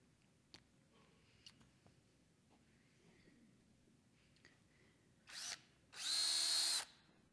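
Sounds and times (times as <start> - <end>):
battery-powered drill whining: 5.3 - 7.0.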